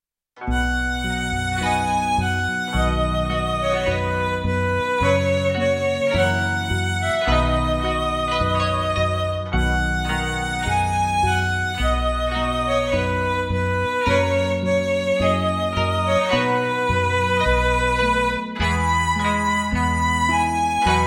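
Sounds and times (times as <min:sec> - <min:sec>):
four-string instrument: 0:00.4 - 0:21.0.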